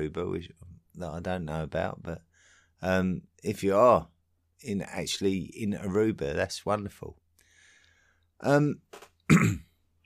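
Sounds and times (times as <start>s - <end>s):
speech: 0.0s - 7.2s, 8.4s - 9.6s
person with a dry throat clearing throat: 9.3s - 9.8s.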